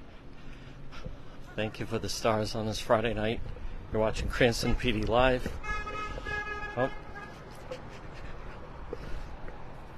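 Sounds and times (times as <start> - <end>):
steady outdoor traffic noise: 0.0 - 9.9
speech: 1.6 - 5.7, 6.8 - 7.0
car horn honking: 4.6 - 7.4.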